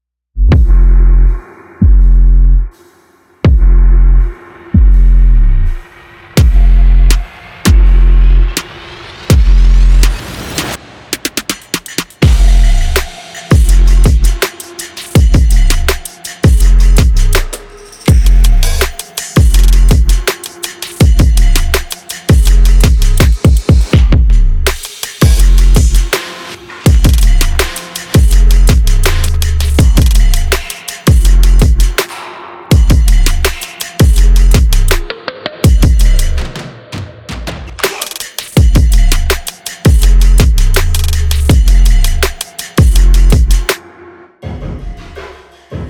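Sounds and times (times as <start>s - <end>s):
vlog background beat: 0.4s - 45.8s.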